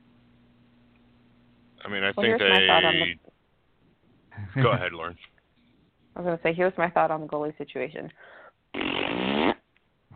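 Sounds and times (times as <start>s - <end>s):
speech: 1.8s - 3.2s, 4.5s - 5.3s, 6.2s - 8.9s
laughter: 2.2s - 3.2s, 4.4s - 5.1s
wet fart noise blown with the mouth as a raspberry: 8.7s - 9.7s.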